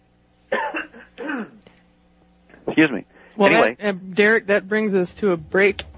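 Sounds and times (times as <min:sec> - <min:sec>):
person coughing: 0:00.5 - 0:01.6
speech: 0:02.8 - 0:05.9.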